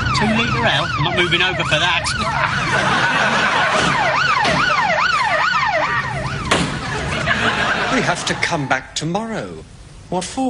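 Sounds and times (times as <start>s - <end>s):
police car siren wailing: 0.0s - 7.8s
road traffic rumble: 0.0s - 9.0s
speech: 0.2s - 4.7s, 8.0s - 10.4s
laughter: 2.2s - 4.8s, 6.8s - 8.8s.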